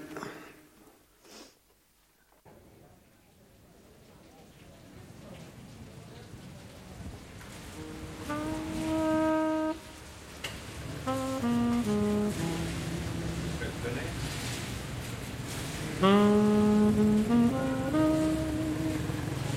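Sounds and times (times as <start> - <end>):
steady rain falling: 2.8 - 19.5
deep horn-like tone: 7.7 - 14.8, 15.7 - 19.5.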